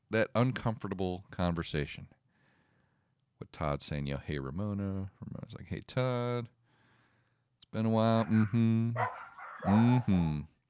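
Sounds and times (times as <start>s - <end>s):
speech: 0.1s - 2.2s, 3.5s - 6.6s, 7.7s - 10.5s
dog yelping and barking: 8.2s - 10.2s.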